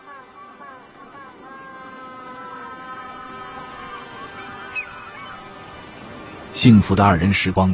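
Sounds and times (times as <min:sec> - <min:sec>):
pair of penguins calling to each other with braying honks: 0:00.0 - 0:06.1
speech: 0:06.6 - 0:07.7.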